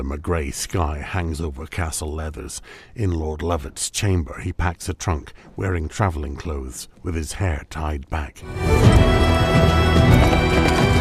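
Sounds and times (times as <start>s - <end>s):
speech: 0.0s - 10.9s
horse hooves kicking up pebbles: 8.8s - 10.9s
horses galloping uphill on a rocky road: 9.0s - 10.9s.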